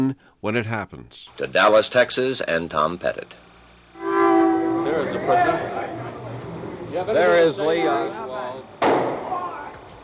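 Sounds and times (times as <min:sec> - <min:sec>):
speech: 0:00.0 - 0:03.5, 0:05.0 - 0:05.7, 0:07.0 - 0:08.7
loud rumbling wash of noise: 0:04.0 - 0:09.2
gunshot in a police headquarters basement: 0:08.8 - 0:09.3.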